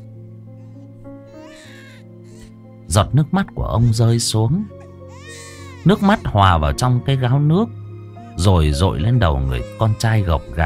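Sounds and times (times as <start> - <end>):
abandoned baby crying: 1.3 - 2.5, 4.8 - 6.4, 8.9 - 10.6
speech: 2.9 - 4.8, 5.8 - 7.8, 8.4 - 10.6.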